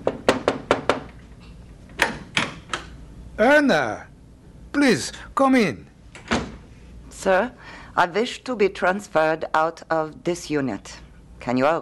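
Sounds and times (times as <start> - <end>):
knocking on a door: 0.0 - 1.1
speech: 3.4 - 4.1, 4.8 - 5.9, 7.2 - 11.8.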